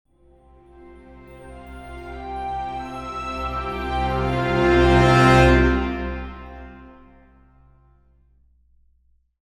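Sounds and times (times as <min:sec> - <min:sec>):
majestic orchestral logo music: 0:00.3 - 0:07.3.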